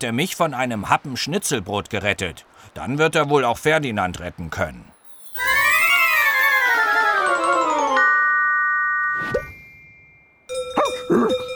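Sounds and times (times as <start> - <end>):
speech: 0.0 - 5.5
shimmering descending magical tone: 4.9 - 9.9
cowbell clanking: 7.9 - 11.5.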